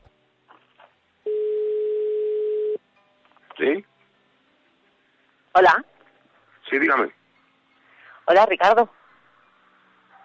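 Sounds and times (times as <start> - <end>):
telephone ringback tone of a call to a mobile phone: 1.3 - 2.8
speech: 3.6 - 3.9, 5.6 - 5.9, 6.7 - 7.2, 8.3 - 9.0.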